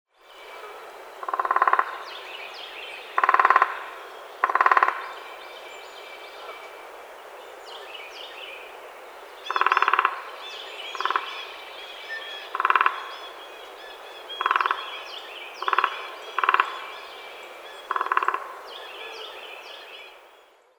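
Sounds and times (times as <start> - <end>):
Downy woodpecker Dryobates pubescens: 0.5 - 2.3, 3.0 - 5.3, 9.4 - 10.3, 10.9 - 11.5, 12.4 - 13.4, 14.3 - 15.0, 15.6 - 20.1.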